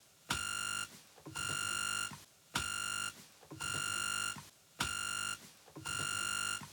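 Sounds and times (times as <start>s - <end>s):
interference signal: 0.3s - 6.7s.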